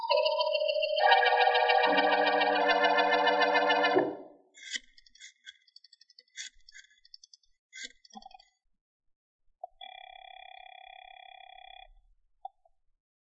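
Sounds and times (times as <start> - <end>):
warbling electronic trill: 0.1 - 4.2.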